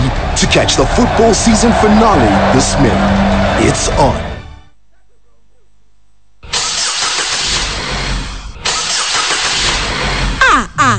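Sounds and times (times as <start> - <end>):
speech: 0.4 - 4.3
car engine cranking, starting and revving: 6.6 - 10.4.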